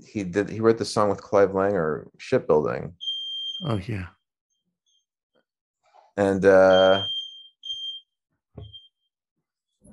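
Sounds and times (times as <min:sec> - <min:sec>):
speech: 0:00.1 - 0:03.0, 0:03.6 - 0:04.2, 0:06.2 - 0:07.1
high-pitched electronic alarm beeps in a room: 0:03.0 - 0:03.8, 0:06.6 - 0:09.0.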